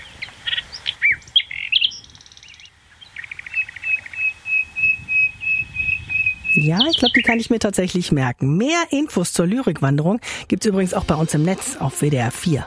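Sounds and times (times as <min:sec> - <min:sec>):
nightingale singing: 0:00.0 - 0:07.6
speech: 0:06.6 - 0:12.6.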